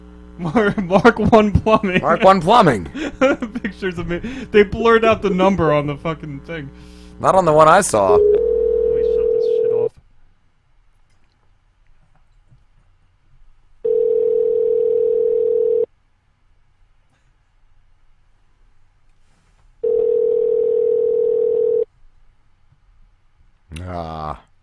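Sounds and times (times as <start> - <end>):
laughter: 0.4 - 5.3
speech: 0.4 - 8.4
telephone ringback tone: 8.1 - 9.9, 13.8 - 15.9, 19.8 - 21.9.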